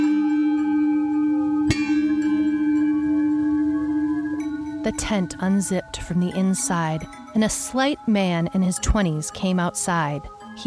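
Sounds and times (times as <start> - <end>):
mallet striking small gong: 0.0 - 6.4
small gong ringing: 0.0 - 7.2
speech: 4.9 - 10.6.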